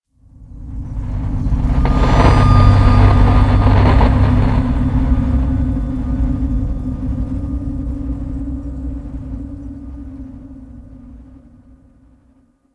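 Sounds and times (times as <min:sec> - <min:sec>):
head display static in a cave: 0:01.3 - 0:06.4.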